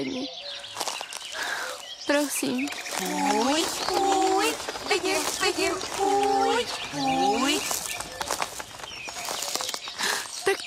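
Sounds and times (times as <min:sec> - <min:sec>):
small birds chirping in short high twitters: 0:00.0 - 0:10.6
speech: 0:02.2 - 0:07.7
small birds flapping wings: 0:02.6 - 0:10.4.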